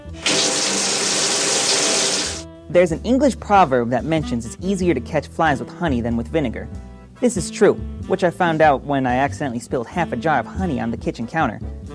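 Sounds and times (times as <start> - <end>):
shower water running in a loud hiss: 0.0 - 2.4
speech: 2.7 - 11.8.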